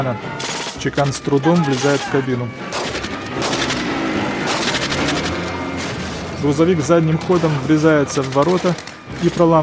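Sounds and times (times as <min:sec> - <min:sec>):
speech: 0:00.0 - 0:03.0, 0:06.4 - 0:09.6
gunfire in a film shootout between soldiers and bandits at a guard post: 0:01.8 - 0:06.0, 0:08.2 - 0:09.0.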